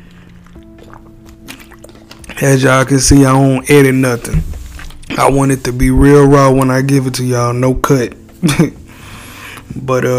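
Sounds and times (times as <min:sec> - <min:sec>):
person drinking water with sips and a gulp: 0:00.0 - 0:02.4
speech: 0:02.4 - 0:04.5, 0:05.2 - 0:08.8, 0:09.8 - 0:10.1.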